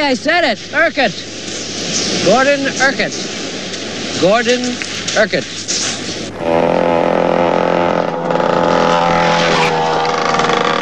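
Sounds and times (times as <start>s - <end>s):
speech: 0.1s - 1.3s, 2.0s - 3.4s, 4.2s - 5.7s
dirt bike speeding down a road: 6.1s - 10.8s.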